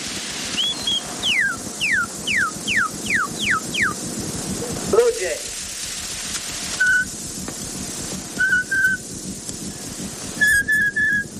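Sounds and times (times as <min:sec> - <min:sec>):
hiss and crackle of an old worn recording: 0:00.0 - 0:11.3
northern cardinal song: 0:00.5 - 0:04.0, 0:06.8 - 0:07.1, 0:08.4 - 0:09.0, 0:10.4 - 0:11.3.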